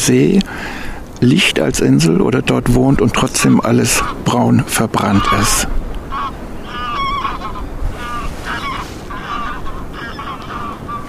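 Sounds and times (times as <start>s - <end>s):
speech: 0.0s - 5.8s
steady low wind rumble: 0.0s - 11.0s
geese honking: 2.9s - 11.0s.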